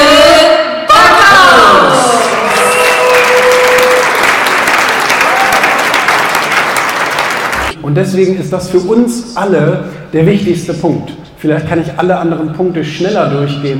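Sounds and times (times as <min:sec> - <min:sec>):
cheers and whoops from a large audience: 0:01.0 - 0:06.3
roaring applause from a large stage audience: 0:02.1 - 0:07.8
speech: 0:08.0 - 0:13.7.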